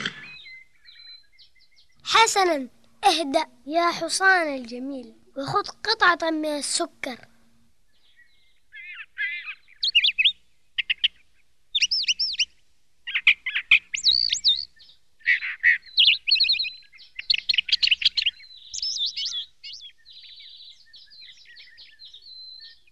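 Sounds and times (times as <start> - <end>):
sparrow chirping on a tree branch: 0.2 - 2.6, 7.9 - 22.9
speech: 2.3 - 7.3.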